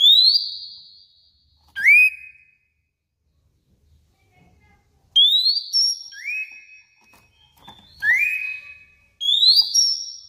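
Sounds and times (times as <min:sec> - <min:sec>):
overexcited Oriental magpie-robin pure high whistles: 0:00.0 - 0:01.1, 0:01.7 - 0:02.6, 0:05.2 - 0:10.2.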